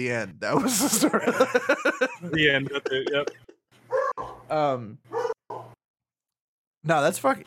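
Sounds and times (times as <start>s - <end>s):
speech: 0.0s - 3.5s, 4.2s - 5.2s, 6.8s - 7.4s
laughter: 0.6s - 3.6s
dog barking: 3.9s - 4.5s, 5.1s - 5.8s.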